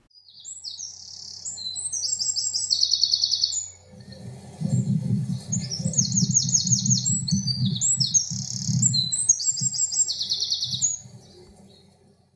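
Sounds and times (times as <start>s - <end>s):
wren singing loud rapid bright trilling phrases: 0.1s - 3.8s, 4.8s - 11.8s
steady low rumble of noise: 3.9s - 10.0s.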